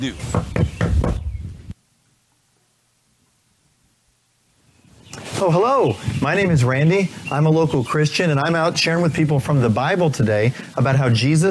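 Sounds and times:
speech: 0.0 - 0.7, 5.4 - 11.5
knocking on a door: 0.3 - 1.3.

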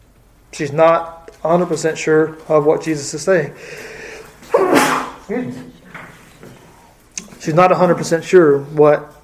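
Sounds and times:
speech: 0.6 - 5.7, 7.4 - 9.2
soft voiced sounds: 0.6 - 9.0
person sneezing: 4.4 - 5.6.

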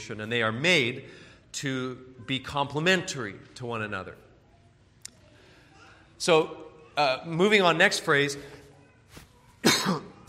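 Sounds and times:
speech: 0.0 - 4.2, 6.2 - 8.6, 9.6 - 10.1
cough: 9.6 - 10.2.

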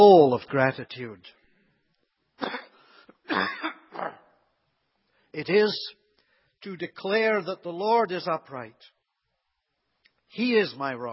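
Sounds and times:
speech: 0.0 - 1.4, 2.4 - 2.6, 3.3 - 4.2, 5.3 - 6.0, 6.6 - 8.9, 10.3 - 11.1
coughing and throat clearing from a tickle in the throat: 2.4 - 4.5.

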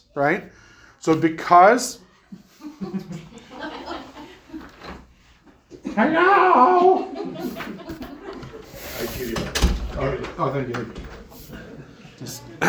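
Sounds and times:
speech: 0.2 - 2.0, 2.8 - 3.7, 6.0 - 7.8, 9.0 - 11.1, 12.2 - 12.6
people talking and laughing in a room: 2.1 - 12.6
door opening with knocks and bumps: 7.6 - 11.5.

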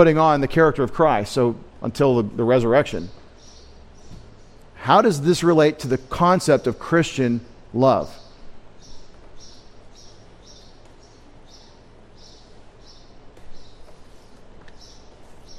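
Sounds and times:
speech: 0.0 - 3.2, 4.8 - 8.2
constant low hum: 0.0 - 15.5
small birds chirping: 2.4 - 15.5.

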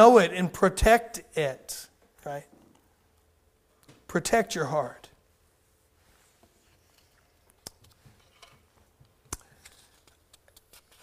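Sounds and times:
speech: 0.0 - 2.5, 4.1 - 5.0
papers being shuffled, rustling and crinkling: 6.5 - 11.0.

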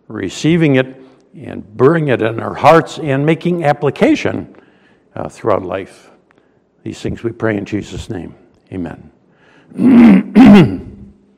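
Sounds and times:
speech: 0.1 - 4.6, 5.2 - 6.1, 6.8 - 9.1, 9.7 - 10.8
person clearing throat with rough bursts: 9.7 - 11.2.

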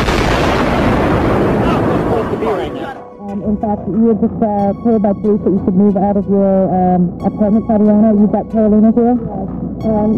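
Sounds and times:
loud sustained explosive roar with low rumble and crackling: 0.0 - 3.0
speech: 3.3 - 10.1.

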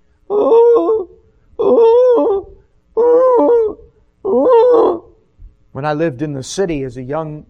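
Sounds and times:
dove cooing: 0.3 - 5.1
speech: 5.8 - 7.4.

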